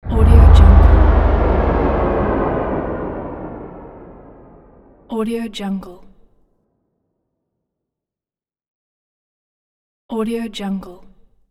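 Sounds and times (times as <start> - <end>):
synth down riser: 0.0 - 5.0.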